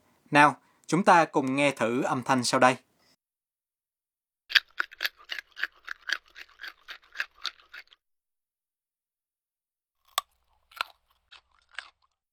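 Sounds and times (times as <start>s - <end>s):
speech: 0.3s - 2.9s
crispy fried bacon bitten and chewed with crunches: 4.5s - 8.0s, 10.0s - 12.3s.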